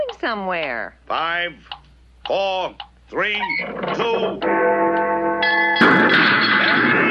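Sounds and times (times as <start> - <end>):
speech: 0.2 - 1.7, 2.3 - 4.8
steady ringing tone: 3.4 - 6.6
fire alarm bell clanging: 3.9 - 6.6.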